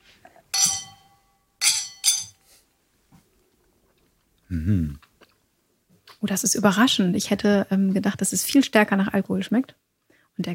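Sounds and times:
glasses of foamy coffee drink clinking in a toast: 0.5s - 2.4s
voice murmuring: 4.5s - 5.0s
speech: 4.5s - 5.1s, 6.2s - 9.8s, 10.4s - 10.5s.

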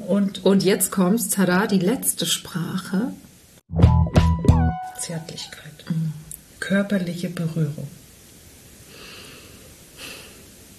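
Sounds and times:
speech: 0.1s - 3.8s, 5.0s - 6.1s, 6.7s - 8.0s
deep breath: 8.9s - 10.5s.

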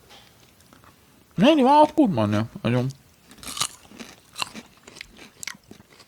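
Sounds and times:
speech: 1.4s - 3.0s
chewing and lip-smacking while eating sausage: 3.3s - 6.0s
crunchy bites of sausage: 3.3s - 6.0s.

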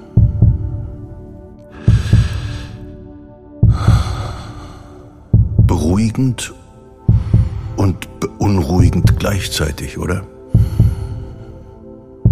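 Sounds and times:
soft human breathing: 0.0s - 5.5s, 10.4s - 12.3s
human heartbeat: 0.2s - 1.0s, 1.9s - 2.7s, 3.6s - 4.5s, 5.3s - 5.9s, 7.1s - 7.8s, 8.8s - 9.2s, 10.6s - 11.3s
speech: 6.0s - 6.6s, 7.9s - 10.4s.

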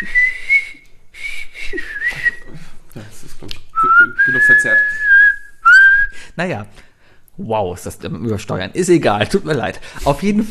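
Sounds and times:
whistled melody in a song by a German band: 0.0s - 2.5s, 3.8s - 6.2s
speech: 6.4s - 10.4s.

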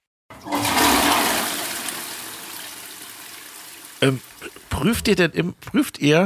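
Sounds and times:
toilet flushing: 0.3s - 4.6s
speech: 4.0s - 6.2s.

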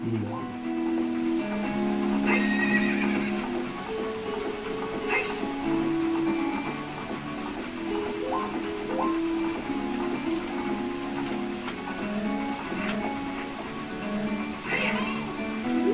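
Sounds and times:
horse hooves clip-clopping: 0.0s - 15.9s
horse neighing: 2.2s - 3.7s, 5.1s - 5.7s, 14.5s - 15.9s.

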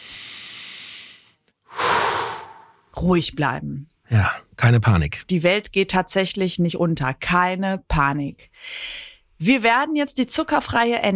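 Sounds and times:
person breathing in and out: 0.0s - 2.9s
speech: 3.0s - 11.1s.

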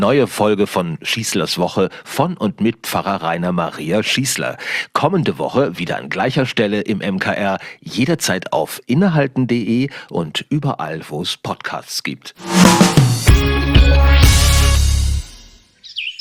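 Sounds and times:
speech: 0.0s - 14.4s
short musical passage: 12.4s - 15.6s.

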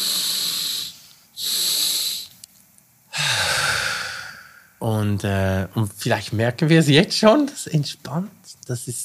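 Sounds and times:
deep breathing in through the nose and out into the belly: 0.0s - 2.3s, 3.1s - 4.8s
speech: 4.8s - 9.0s.

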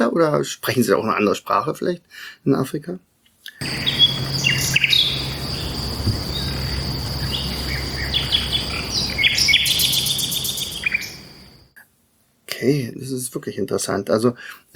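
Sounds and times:
speech: 0.0s - 4.1s, 12.6s - 14.7s
low outdoor rumble: 3.6s - 11.6s
constant shrill drone of crickets and insects: 3.6s - 11.7s
migratory songbird singing short bright phrases: 3.6s - 11.7s.

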